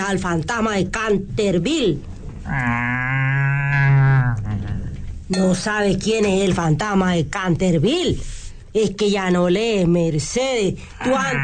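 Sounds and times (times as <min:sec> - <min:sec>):
speech: 0:00.0 - 0:02.7, 0:05.3 - 0:11.4
cow mooing: 0:02.5 - 0:04.6.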